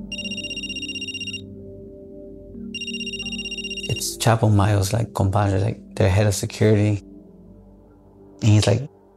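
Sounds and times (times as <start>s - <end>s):
phone ringing with a bright trilling electronic ring: 0.0s - 1.5s, 2.8s - 4.1s
speech: 4.0s - 7.1s, 8.4s - 8.9s.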